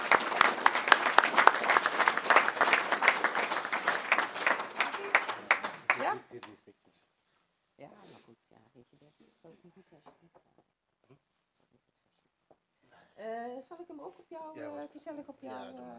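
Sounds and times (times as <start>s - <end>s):
audience applauding warmly: 0.0s - 6.5s
speech: 14.1s - 15.9s.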